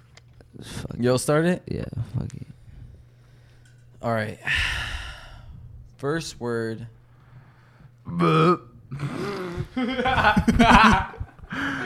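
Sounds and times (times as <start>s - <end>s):
speech: 0.6s - 2.5s, 4.0s - 4.9s, 6.0s - 7.0s, 8.1s - 9.2s, 9.8s - 11.1s
person burping: 8.1s - 10.3s
person chuckling: 9.0s - 11.8s.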